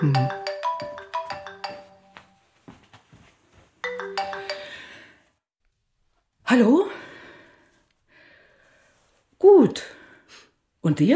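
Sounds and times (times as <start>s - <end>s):
speech: 0.0s - 0.4s, 6.5s - 6.9s, 11.0s - 11.1s
telephone ringtone electronic melody: 0.0s - 2.4s, 3.8s - 5.1s.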